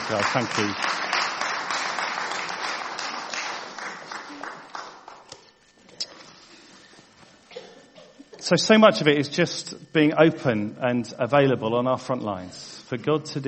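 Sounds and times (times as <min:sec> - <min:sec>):
audience applauding: 0:00.0 - 0:05.4
speech: 0:00.1 - 0:01.0, 0:08.5 - 0:13.4.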